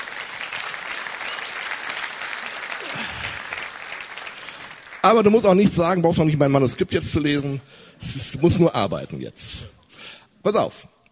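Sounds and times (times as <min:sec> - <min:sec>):
audience applause: 0:00.0 - 0:05.4
speech: 0:05.0 - 0:09.8, 0:10.4 - 0:11.0.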